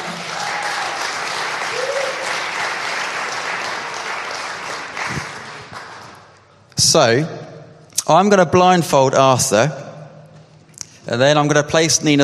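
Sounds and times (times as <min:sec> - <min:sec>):
room full of people applauding: 0:00.0 - 0:06.3
speech: 0:06.9 - 0:07.4, 0:08.1 - 0:09.8, 0:11.1 - 0:12.2.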